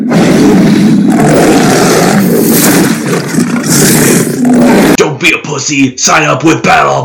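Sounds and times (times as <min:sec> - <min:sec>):
monstrous creature roar sound effect: 0:00.0 - 0:05.0
speech: 0:05.2 - 0:07.0.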